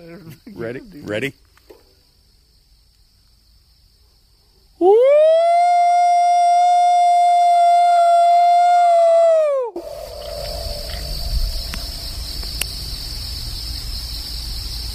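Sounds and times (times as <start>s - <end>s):
faint outdoor noise: 0.0s - 14.9s
speech: 0.2s - 1.5s
person imitating a Bigfoot howl: 4.8s - 12.4s.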